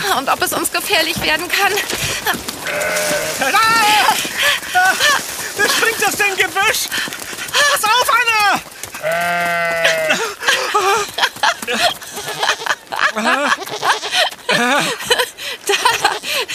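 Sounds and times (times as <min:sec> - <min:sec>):
speech: 0:00.2 - 0:09.8, 0:11.7 - 0:16.5
billy goat bleating: 0:02.6 - 0:04.2, 0:09.0 - 0:10.3, 0:13.5 - 0:14.2
laughter: 0:03.2 - 0:08.5, 0:09.8 - 0:16.5.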